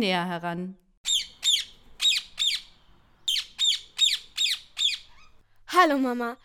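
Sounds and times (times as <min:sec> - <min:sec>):
speech: 0:00.0 - 0:00.8, 0:05.7 - 0:06.4
birds giving harsh squawky chirps in an aviary: 0:01.0 - 0:05.5.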